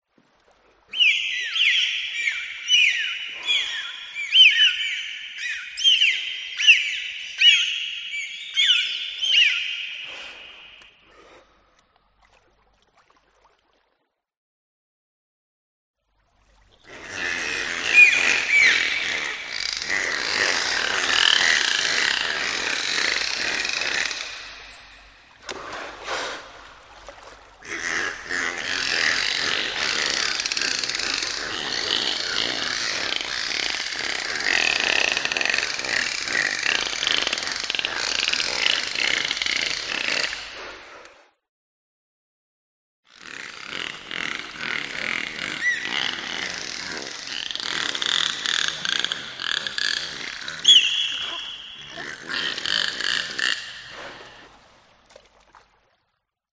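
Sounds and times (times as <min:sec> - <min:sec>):
dolphin: 0:00.8 - 0:11.8, 0:16.6 - 0:41.4, 0:43.1 - 0:55.0.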